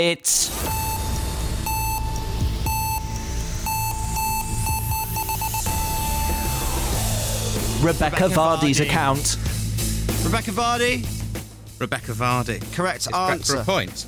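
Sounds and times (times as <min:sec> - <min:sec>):
speech: 0:00.0 - 0:00.8, 0:07.8 - 0:09.5, 0:10.2 - 0:11.2, 0:11.8 - 0:14.0
electronic quiz countdown timer beeping: 0:00.5 - 0:09.2.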